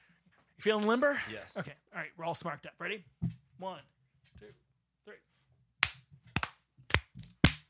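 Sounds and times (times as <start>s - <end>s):
speech: 0.6s - 5.3s
sharp hand claps: 5.8s - 7.6s.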